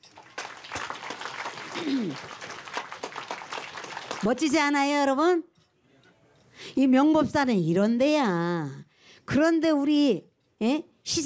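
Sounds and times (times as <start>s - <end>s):
crowd applauding: 0.0s - 4.5s
speech: 1.8s - 2.4s, 4.2s - 5.5s, 6.8s - 11.2s.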